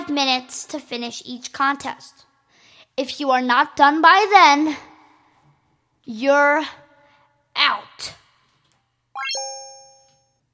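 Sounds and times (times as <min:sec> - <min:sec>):
speech: 0:00.1 - 0:02.3, 0:03.0 - 0:04.9, 0:06.1 - 0:06.8, 0:07.6 - 0:08.2
two-tone computer chime when a participant is logged out of the system: 0:09.2 - 0:10.4.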